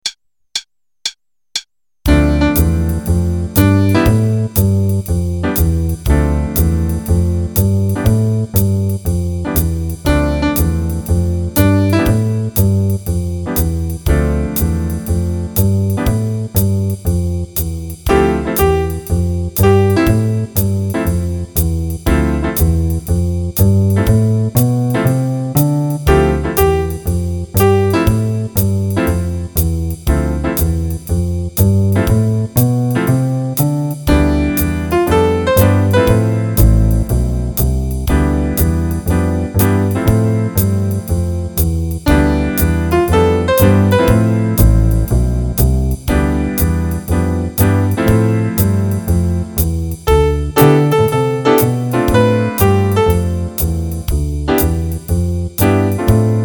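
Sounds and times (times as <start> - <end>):
jazz improvisation in D minor with jazz rhythms: 2.1 - 56.4.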